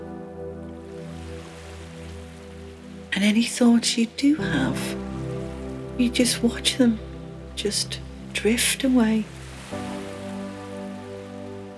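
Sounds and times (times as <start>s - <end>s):
gentle ocean waves: 0.0s - 11.7s
mellow musical drone: 0.0s - 11.7s
speech: 3.1s - 5.0s, 6.0s - 9.9s.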